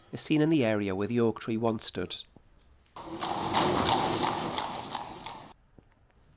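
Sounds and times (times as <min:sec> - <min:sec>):
speech: 0:00.1 - 0:02.3
horse-drawn carriage hooves clip-clopping on cobbles: 0:03.0 - 0:06.1.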